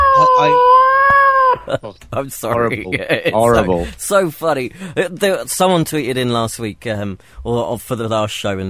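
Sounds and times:
pet cats caterwauling in a wailing yowl: 0:00.0 - 0:01.7
speech: 0:01.7 - 0:08.6.

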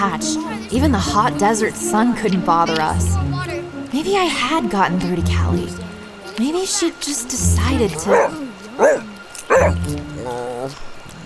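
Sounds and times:
speech: 0:00.0 - 0:10.9
dog whining and whimpering after eating too fast: 0:08.0 - 0:10.7
dog yipping after eating too fast: 0:08.1 - 0:09.8.

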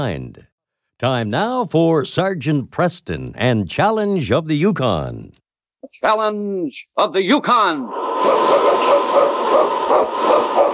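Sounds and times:
speech: 0:00.0 - 0:09.2
husky sled dogs barking excitedly: 0:08.2 - 0:10.7.

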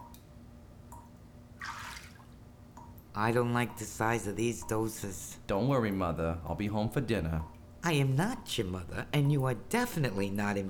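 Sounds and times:
low steady hum: 0:00.0 - 0:10.6
water sloshing in a tub of ice water: 0:00.9 - 0:10.6
faint drip-like ticks: 0:02.7 - 0:03.9, 0:04.5 - 0:06.1, 0:07.3 - 0:07.7
speech: 0:03.2 - 0:10.6.

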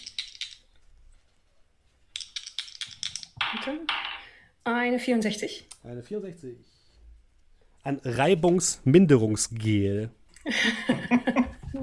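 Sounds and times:
dice rattling on a hard surface: 0:00.0 - 0:00.8, 0:02.1 - 0:04.3
speech: 0:03.6 - 0:06.8, 0:07.8 - 0:11.8
laughter: 0:10.4 - 0:11.7.

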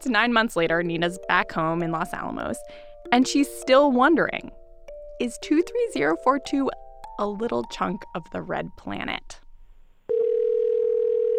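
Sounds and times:
speech: 0:00.0 - 0:04.6, 0:05.2 - 0:09.4
telephone dial tone: 0:10.1 - 0:11.3.

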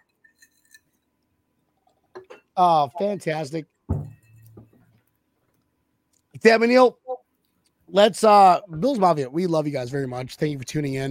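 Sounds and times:
speech: 0:02.6 - 0:03.7, 0:06.4 - 0:07.0, 0:07.9 - 0:11.0
drinking glasses clinking together in a toast: 0:03.9 - 0:04.8.

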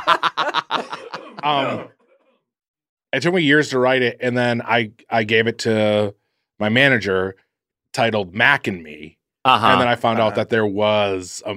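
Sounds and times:
laughter: 0:00.0 - 0:02.0, 0:09.7 - 0:10.5
speech: 0:00.1 - 0:02.0, 0:03.1 - 0:11.5
person giving loud rough forced coughs: 0:00.8 - 0:01.9.

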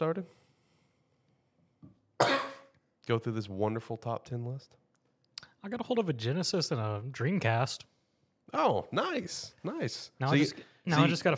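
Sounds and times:
speech: 0:00.0 - 0:00.5, 0:02.2 - 0:02.5, 0:03.1 - 0:04.8, 0:05.6 - 0:11.3
loud harsh cough with faint throaty catch: 0:02.2 - 0:02.8.

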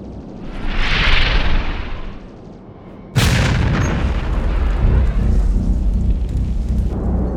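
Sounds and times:
hissing whoosh of a torpedo: 0:00.0 - 0:03.1
explosion as a torpedo strikes a missile in a battle: 0:00.0 - 0:06.4.

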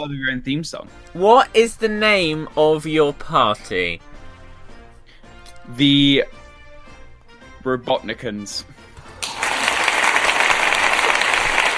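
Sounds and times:
speech: 0:00.0 - 0:04.1, 0:05.7 - 0:06.4, 0:07.6 - 0:08.8
applause of many hands clapping: 0:09.2 - 0:11.7.

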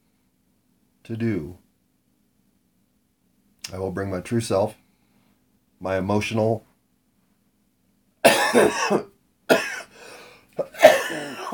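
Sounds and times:
speech: 0:01.1 - 0:01.6, 0:03.7 - 0:04.8, 0:05.8 - 0:06.7, 0:08.5 - 0:09.7
raspy throat clearing: 0:08.2 - 0:10.0, 0:10.6 - 0:11.5
person coughing: 0:08.2 - 0:11.5.

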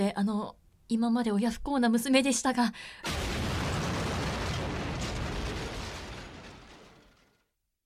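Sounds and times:
speech: 0:00.0 - 0:03.4
explosion sound effect rumbling: 0:03.1 - 0:07.4.

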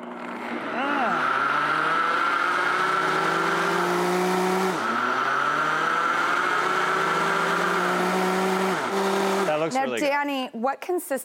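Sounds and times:
kitchen blender running, liquefying pancake batter: 0:00.0 - 0:10.0
speech: 0:10.2 - 0:11.2.

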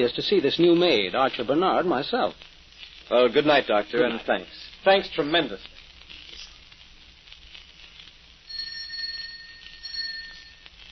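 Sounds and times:
speech: 0:00.0 - 0:02.5, 0:03.1 - 0:05.7
faint hiss: 0:00.0 - 0:10.8
bright electric doorbell ringing: 0:08.5 - 0:10.7.

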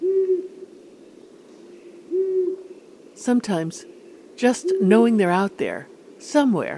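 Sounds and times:
long-eared owl hooting: 0:00.0 - 0:03.2, 0:03.8 - 0:05.1
faint hiss: 0:00.0 - 0:06.7
speech: 0:03.2 - 0:06.7.

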